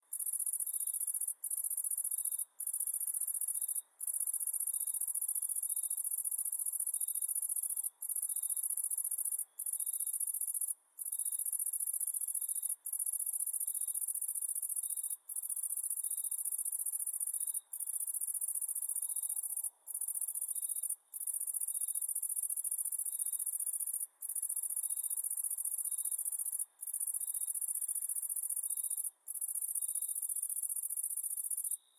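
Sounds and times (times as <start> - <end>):
cicadas at night: 0.1 - 31.9.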